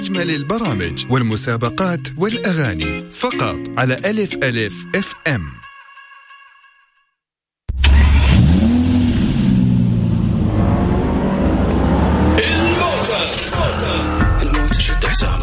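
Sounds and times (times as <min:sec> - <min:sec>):
speech: 0:00.1 - 0:05.6
car engine starting, revving and accelerating: 0:07.7 - 0:15.2.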